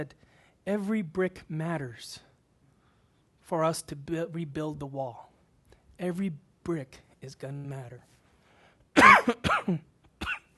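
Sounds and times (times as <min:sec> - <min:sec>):
speech: 0:00.0 - 0:02.3, 0:03.5 - 0:05.3, 0:06.0 - 0:08.2, 0:09.0 - 0:09.9
harsh coughs: 0:09.0 - 0:10.5.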